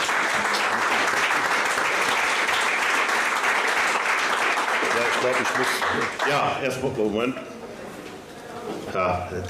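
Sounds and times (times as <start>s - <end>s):
crowd applauding: 0.0s - 6.6s
speech: 5.2s - 7.6s, 8.9s - 9.4s.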